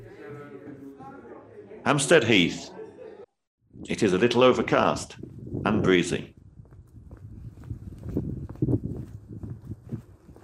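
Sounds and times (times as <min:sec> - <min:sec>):
speech: 0:01.8 - 0:02.8, 0:03.8 - 0:06.4
footsteps of people power walking at a brisk pace outdoors on an overcast breezy heath: 0:06.4 - 0:10.4.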